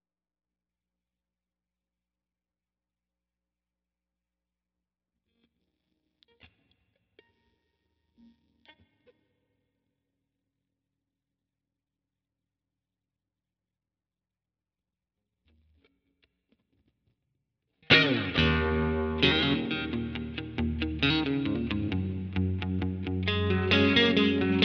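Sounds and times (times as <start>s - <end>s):
guitar playing a verse: 17.9s - 24.6s.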